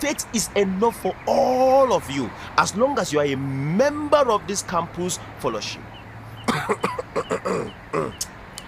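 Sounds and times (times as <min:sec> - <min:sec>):
speech: 0:00.0 - 0:06.0, 0:06.7 - 0:08.3
person in a hoarse fit of coughing: 0:06.5 - 0:08.2.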